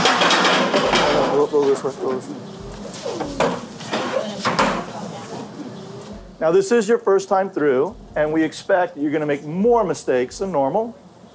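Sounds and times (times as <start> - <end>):
chairs dragged across the floor into place: 0.0 - 6.2
indistinct voices murmuring in the room: 0.7 - 8.6
speech: 1.5 - 3.6, 6.4 - 11.0.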